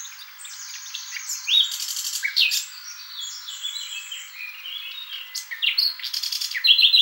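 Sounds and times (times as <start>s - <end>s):
common nightingale Luscinia megarhynchos singing whistles chirps and trills: 0.0s - 7.0s.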